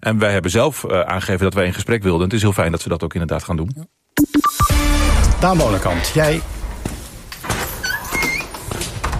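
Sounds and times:
speech: 0.0 - 4.4, 5.4 - 6.6
door creaking open: 5.4 - 9.1.

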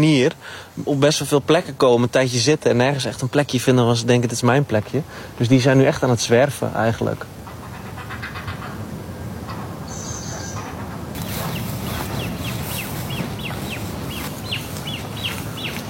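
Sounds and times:
speech: 0.0 - 7.4
great crested grebe chicks giving high-pitched begging peeps: 9.6 - 15.8.

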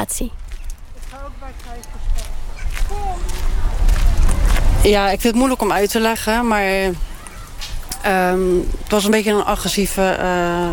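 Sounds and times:
speech: 0.0 - 0.4, 1.3 - 3.8, 4.8 - 7.1, 8.0 - 10.7
footsteps of people walking through a city street: 0.0 - 8.1
low traffic rumble: 0.0 - 10.7.

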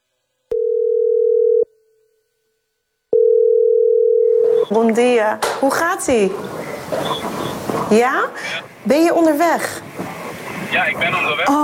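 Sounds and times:
telephone dial tone while placing a call: 0.5 - 1.7, 3.2 - 4.7
speech: 4.7 - 9.9, 10.7 - 11.6.

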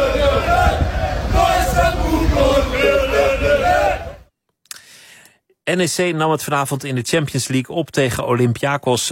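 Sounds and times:
football stadium crowd chanting in Greece at a Champions League match: 0.0 - 4.2
speech: 5.7 - 9.1.

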